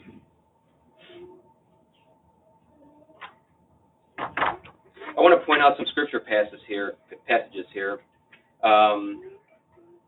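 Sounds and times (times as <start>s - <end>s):
low hum: 0.0s - 10.0s
door pushed shut with a loud thump: 4.2s - 4.8s
quieter knocks and handling noises: 4.2s - 5.2s
speech: 5.3s - 9.4s.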